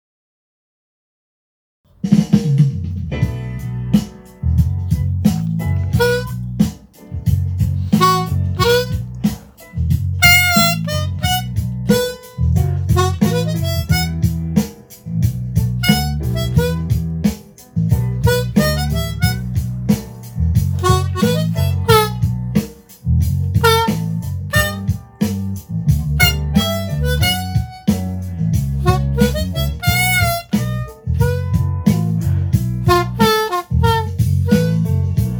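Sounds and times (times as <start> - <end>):
acoustic music: 2.9 - 35.3.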